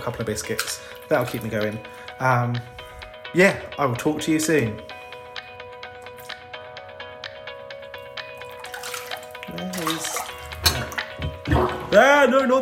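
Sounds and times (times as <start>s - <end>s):
water sloshing and splashing in a bathtub: 0.0s - 1.9s, 8.4s - 12.0s
speech: 0.0s - 4.9s, 12.0s - 12.6s.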